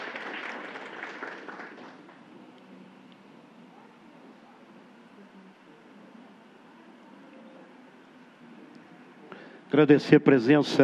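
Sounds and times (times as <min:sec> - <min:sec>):
audience applause: 0:00.0 - 0:02.3
speech: 0:09.7 - 0:10.8.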